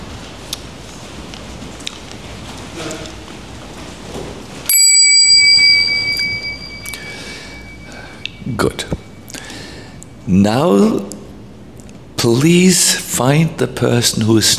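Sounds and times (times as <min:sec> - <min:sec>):
bell struck: 0:04.7 - 0:09.8
speech: 0:10.3 - 0:11.2, 0:12.2 - 0:14.5.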